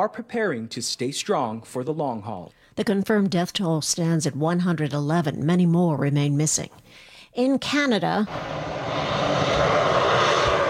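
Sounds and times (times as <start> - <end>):
speech: 0.0 - 9.2
firefighting airplanes flying over wildfires in Canada's Northwest Territories: 8.3 - 10.6.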